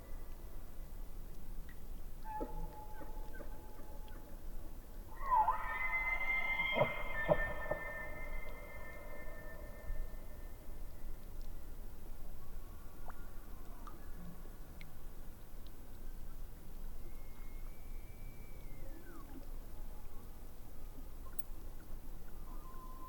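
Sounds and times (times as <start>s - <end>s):
faint ticks: 0.2s - 4.3s, 11.0s - 12.2s, 13.0s - 17.0s, 21.2s - 22.4s
elk bugling: 5.2s - 9.8s.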